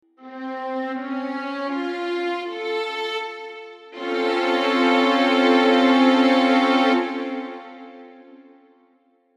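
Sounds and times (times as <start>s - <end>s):
suspended flat nine Dorian chord: 0.2s - 8.9s.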